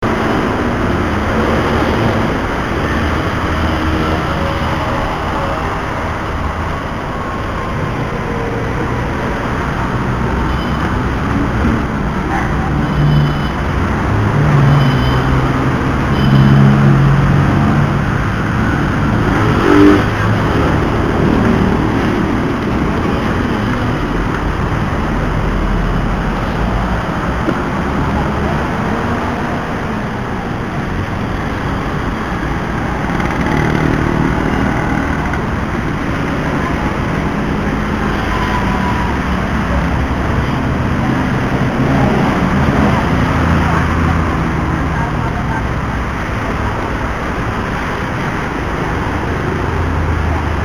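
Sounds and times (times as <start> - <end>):
street walk ambience recorded on a mobile phone: 0.0 - 50.6.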